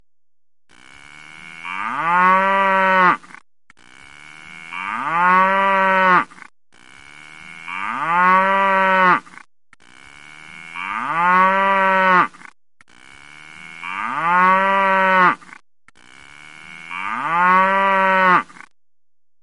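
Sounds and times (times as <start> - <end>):
cow mooing: 1.1 - 3.3, 4.3 - 6.4, 7.2 - 9.4, 10.4 - 12.4, 13.3 - 15.5, 16.4 - 18.7.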